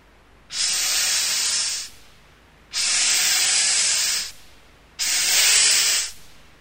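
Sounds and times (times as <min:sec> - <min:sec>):
snake hissing: 0:00.5 - 0:02.0, 0:02.7 - 0:04.4, 0:05.0 - 0:06.2.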